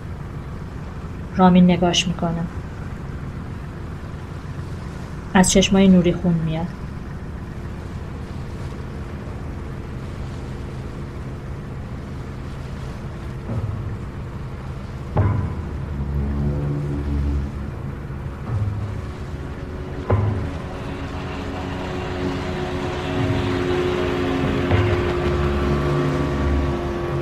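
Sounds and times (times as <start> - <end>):
small boat engines droning as boats approach a fishing boat: 0.0 - 27.2
speech: 1.4 - 2.6, 5.3 - 6.8
thumps: 13.2 - 20.9.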